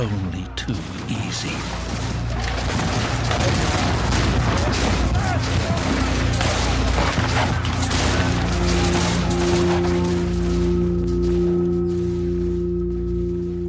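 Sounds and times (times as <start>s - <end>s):
speech: 0.0s - 2.0s
volleys of rifle fire from rebels shooting out of fire pits: 0.8s - 10.7s
sustained droning tone: 5.2s - 13.6s.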